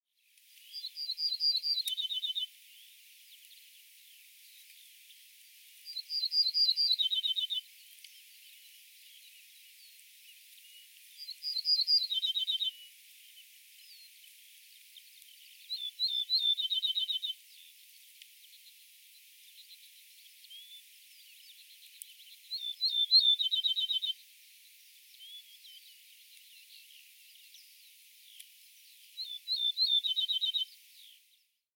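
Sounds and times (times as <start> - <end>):
Emberiza hortulana ortolan bunting: 0.7 - 2.9, 5.9 - 10.0, 10.6 - 14.2, 14.9 - 17.8, 19.4 - 24.2, 25.1 - 31.6.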